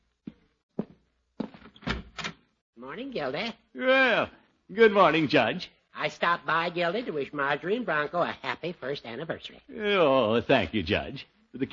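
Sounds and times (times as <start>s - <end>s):
footsteps crossing the floor: 0.0s - 1.8s
speech: 2.8s - 11.7s.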